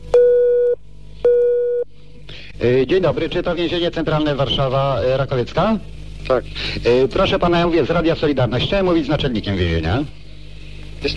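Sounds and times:
telephone line beeps as a call is placed: 0.1 - 1.9
speech: 2.6 - 10.2.

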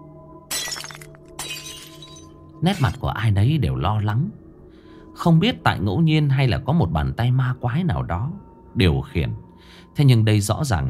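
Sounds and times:
glass shards of a vase scattering: 0.5 - 3.0
flower vase falling to the ground and shattering: 0.5 - 3.1
speech: 2.6 - 4.4, 5.2 - 10.8.

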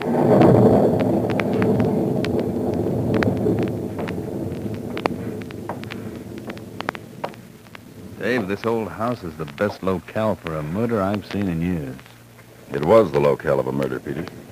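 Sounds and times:
sharp ticks and knocks: 0.0 - 12.5
heavy thunder rumbling on a stormy night: 0.0 - 14.5
wind roaring on a stormy night: 0.0 - 14.5
speech: 8.5 - 12.1, 12.7 - 14.4.

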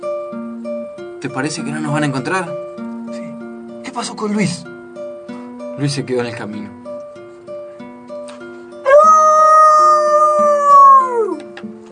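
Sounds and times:
speech: 1.2 - 2.7, 4.0 - 4.7, 5.8 - 6.8
neighbour's dog howling like a wolf: 8.9 - 11.5.

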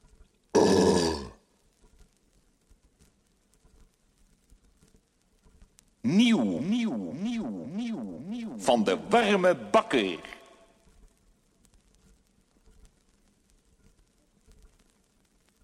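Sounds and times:
big loud voiced burp: 0.6 - 1.4
speech: 6.1 - 10.4
loud vocal sound with pitch swinging up and down: 6.1 - 10.6.

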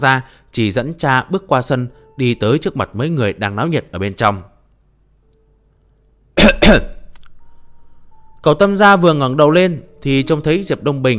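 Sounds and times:
speech: 0.0 - 4.5, 6.7 - 7.0, 8.4 - 11.1
dry cough: 6.4 - 7.0.

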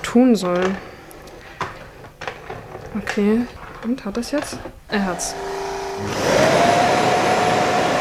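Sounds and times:
speech: 0.1 - 0.9, 2.9 - 6.4
robot vacuum cleaner at its docking station emptying its dust container: 4.4 - 7.9.

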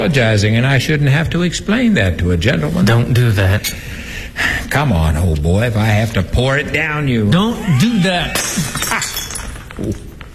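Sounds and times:
speech: 0.0 - 9.0, 9.8 - 10.1
drinking glass shattering: 8.0 - 10.1
glass fragments clinking: 8.2 - 10.2.

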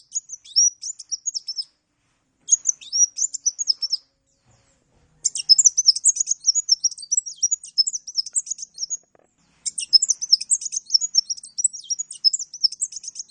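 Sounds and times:
Oriental magpie-robin singing lively: 0.0 - 1.8, 2.5 - 4.5, 5.2 - 13.2.

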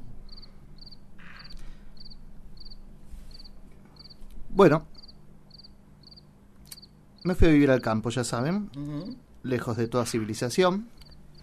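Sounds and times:
low constant hum: 0.0 - 11.4
cricket chirping: 0.2 - 4.2, 4.9 - 7.9, 11.0 - 11.4
speech: 4.6 - 4.9, 7.2 - 11.0.

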